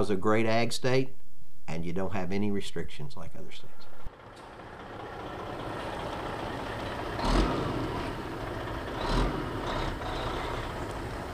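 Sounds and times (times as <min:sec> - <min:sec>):
speech: 0:00.0 - 0:04.0
tractor diesel engines rumbling while planting crops in a field in central Ohio: 0:03.5 - 0:11.3.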